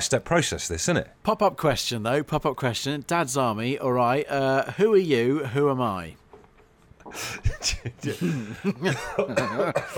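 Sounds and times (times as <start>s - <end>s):
speech: 0.0s - 6.2s, 7.1s - 9.9s
person coughing roughly: 7.3s - 9.9s.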